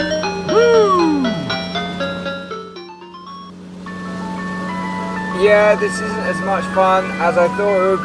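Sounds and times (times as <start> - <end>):
ice cream van engine droning: 0.0 - 8.0
ice cream van tinkling chime melody: 0.0 - 8.0
speech: 5.4 - 8.0.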